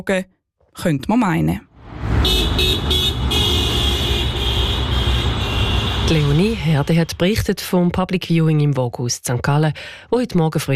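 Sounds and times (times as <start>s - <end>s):
speech: 0.0s - 2.9s, 6.1s - 10.7s
busy street traffic rumbling at a market square bus stop: 1.7s - 8.2s.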